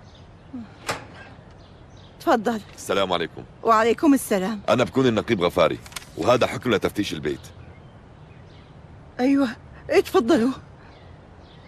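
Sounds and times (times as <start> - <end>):
speech: 0.5 - 0.8, 2.2 - 7.6, 9.2 - 10.7
house door creak: 0.6 - 1.6
house door latch click: 0.8 - 1.6.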